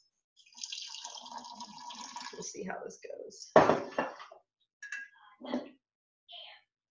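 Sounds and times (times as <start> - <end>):
heated filtered hot water pouring into a container of washing soda: 0.4 - 2.8
speech: 2.4 - 4.4.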